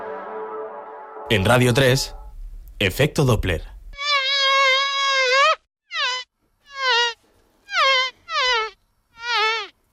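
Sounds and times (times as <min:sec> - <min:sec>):
speech: 0:01.3 - 0:02.2, 0:02.8 - 0:03.7
fly buzzing sound effect: 0:04.0 - 0:09.8.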